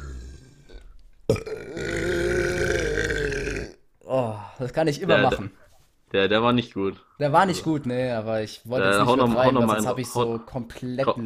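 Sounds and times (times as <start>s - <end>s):
long loud burp: 0.0s - 3.8s
speech: 4.2s - 11.2s.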